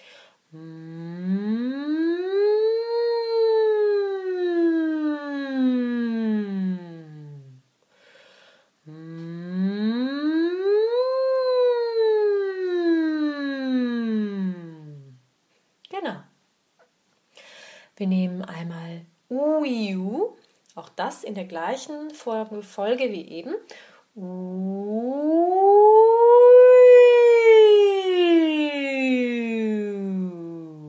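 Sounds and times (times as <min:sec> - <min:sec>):
breath: 0:00.0 - 0:00.4, 0:07.9 - 0:08.8, 0:17.3 - 0:18.0, 0:23.7 - 0:24.1
person humming a closed-mouth mmm imitating a siren: 0:00.5 - 0:07.6, 0:08.9 - 0:15.2, 0:24.2 - 0:30.8
speech: 0:21.1 - 0:24.3.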